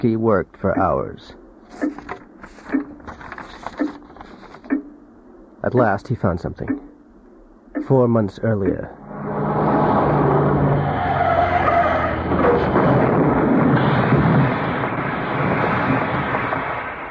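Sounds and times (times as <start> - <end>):
speech: 0.0 - 2.8, 5.6 - 6.9, 7.9 - 9.0
car skidding with loud sustained tire screech: 9.0 - 14.8
car engine roaring: 9.0 - 17.1.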